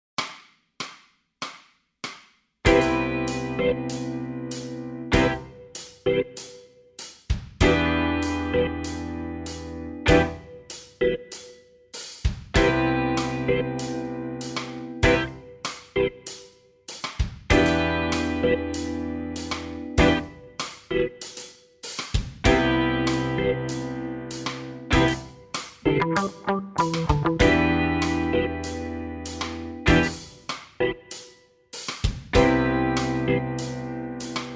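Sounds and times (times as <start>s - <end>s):
bass blues funk backing track: 2.7s - 6.5s, 7.4s - 11.4s, 12.0s - 34.5s.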